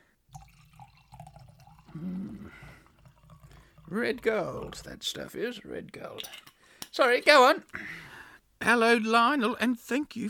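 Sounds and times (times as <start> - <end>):
water splashing and trickling into a glass: 0.3 - 5.2
speech: 2.0 - 2.7, 3.9 - 10.2.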